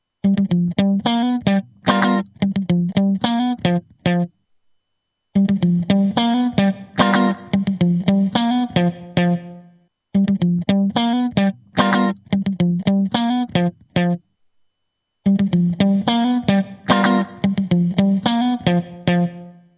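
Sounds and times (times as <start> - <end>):
funky guitar riff: 0.2 - 4.4, 5.4 - 14.2, 15.2 - 19.7.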